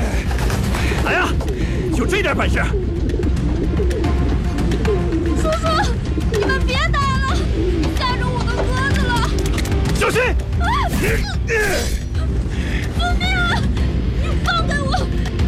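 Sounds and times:
pigeons cooing above a courtyard house: 0.0 - 10.0
dense loud continuous background: 0.0 - 15.4.

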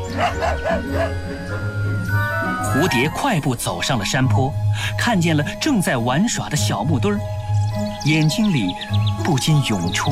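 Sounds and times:
small puppy yapping while playing with a child at a farmhouse: 0.0 - 1.2
speech: 0.2 - 1.8, 2.7 - 10.1.

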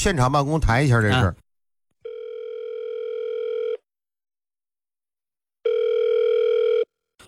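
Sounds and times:
speech: 0.0 - 1.4
telephone line ring tones while a call connects: 2.0 - 3.8, 5.6 - 6.9.

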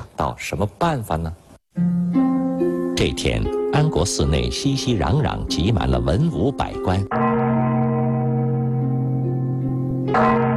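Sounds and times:
speech: 0.2 - 2.2, 3.0 - 7.3
large temple bell ringing inside a busy temple: 6.8 - 10.5.

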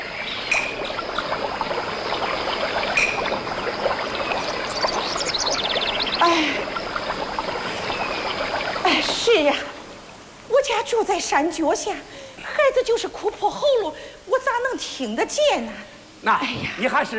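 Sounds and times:
water splashing: 0.0 - 12.3
mountain stream babbling: 0.0 - 15.5
faint bird chirps: 2.0 - 9.2
speech: 9.4 - 9.7, 10.9 - 17.1.

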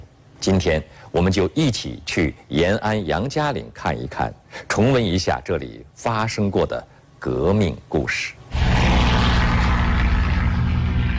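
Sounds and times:
speech: 0.4 - 8.4
aircraft engines roaring overhead with deep propeller rumble: 8.6 - 11.1.

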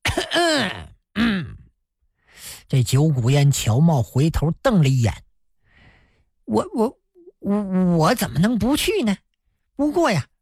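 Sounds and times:
two men lying on beds coughing heavily: 0.0 - 1.5
speech: 2.7 - 5.3, 6.5 - 9.2, 9.8 - 10.3.

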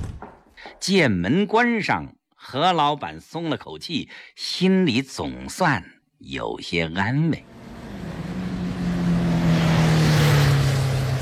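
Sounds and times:
speech: 0.8 - 7.6
broad wash of road or motor noise: 7.4 - 11.2
heavy engine of a loaded cargo truck droning while driving off: 7.4 - 11.2.

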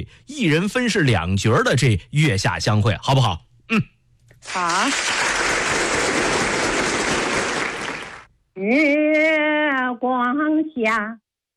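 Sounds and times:
speech: 0.0 - 5.2, 8.6 - 11.2
applause for a live performer doing a two-role opera piece: 4.5 - 8.3.

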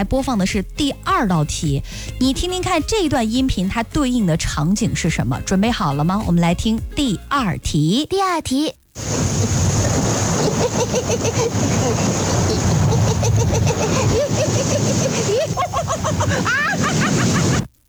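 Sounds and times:
speech: 0.0 - 9.4, 10.8 - 12.3, 13.2 - 17.4
sea waves: 9.0 - 17.7
voices and shrill laughing calls: 9.0 - 17.7.

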